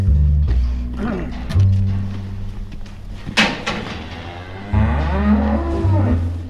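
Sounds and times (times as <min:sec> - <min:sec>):
metal clank: 0:01.0 - 0:06.4
cows mooing in an enclosed farm shed: 0:03.4 - 0:06.4.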